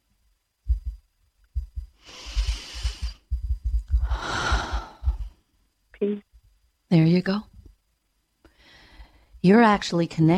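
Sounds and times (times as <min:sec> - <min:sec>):
low rhythmic thumping: 0:00.6 - 0:05.4
slow breath in and long breath out during a guided relaxation exercise: 0:01.9 - 0:03.3, 0:03.9 - 0:05.4, 0:08.4 - 0:09.4
speech: 0:06.0 - 0:06.3, 0:06.9 - 0:07.5, 0:09.4 - 0:10.3.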